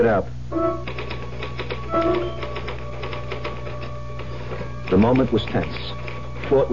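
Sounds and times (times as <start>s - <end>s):
speech: 0.0s - 0.9s, 4.9s - 6.7s
low hum: 0.0s - 6.7s
typewriter keystrikes: 0.8s - 6.7s
brief ringing tone: 1.9s - 2.6s.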